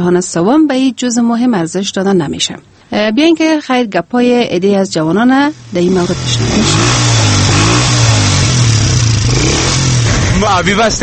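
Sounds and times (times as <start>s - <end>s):
speech: 0.0s - 7.1s, 10.4s - 11.0s
motorcycle engine revving: 5.4s - 11.0s.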